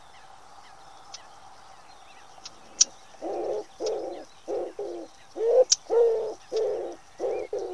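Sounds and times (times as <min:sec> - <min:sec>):
common wood pigeon giving muffled coos: 0:03.2 - 0:07.7.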